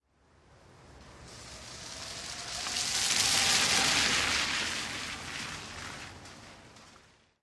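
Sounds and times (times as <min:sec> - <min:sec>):
car passing by at medium speed: 0:00.4 - 0:07.4.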